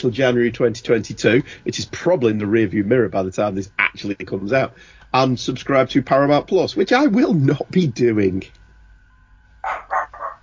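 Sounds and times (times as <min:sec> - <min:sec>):
speech: 0:00.0 - 0:08.6
faint steady hum: 0:00.0 - 0:10.4
dog barking: 0:09.6 - 0:10.4.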